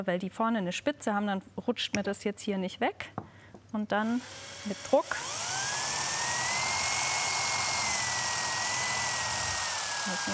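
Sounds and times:
speech: 0:00.0 - 0:05.5, 0:10.1 - 0:10.3
small wood drill bit drilling through a seashell: 0:04.1 - 0:10.3.

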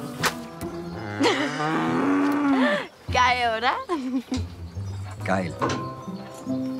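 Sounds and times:
cow mooing: 0:00.0 - 0:02.7
speech: 0:01.2 - 0:02.0, 0:03.3 - 0:04.5, 0:05.3 - 0:06.6.

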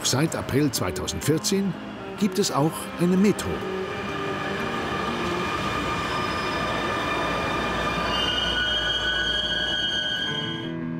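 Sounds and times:
train rolling along the rails: 0:00.0 - 0:10.7
speech: 0:00.1 - 0:04.1
high metallic squeals from train wheels: 0:03.7 - 0:10.7.

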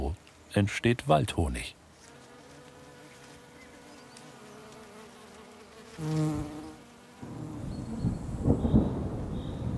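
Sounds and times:
speech: 0:00.5 - 0:01.8, 0:06.0 - 0:06.6
honeybees buzzing: 0:01.9 - 0:09.6.

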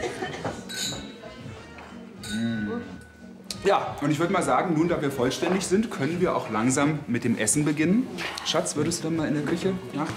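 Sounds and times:
glasses clinking in a toast: 0:00.3 - 0:03.4
speech: 0:03.6 - 0:10.1.

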